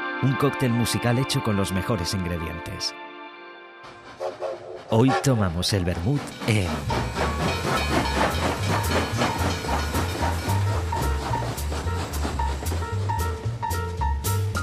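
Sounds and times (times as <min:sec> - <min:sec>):
speech: 0:00.2 - 0:03.1, 0:04.9 - 0:07.2
steam train chugging with hiss and clatter: 0:03.9 - 0:14.5.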